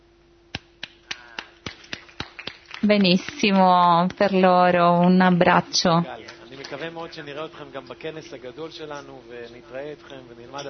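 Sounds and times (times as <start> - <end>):
faint constant hum: 0.0 - 10.6
steady rhythmic clapping: 0.5 - 7.3
speech: 2.8 - 10.6.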